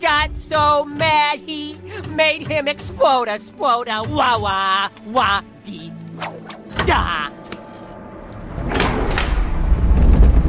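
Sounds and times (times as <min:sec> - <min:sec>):
speech: 0:00.0 - 0:07.4
ancient heavy trap door grinding open: 0:08.4 - 0:10.3.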